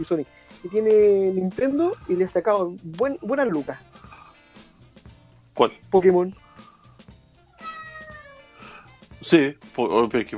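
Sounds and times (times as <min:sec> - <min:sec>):
speech: 0:00.0 - 0:04.0, 0:05.6 - 0:06.4, 0:09.2 - 0:10.3
female cat meowing: 0:07.4 - 0:09.0.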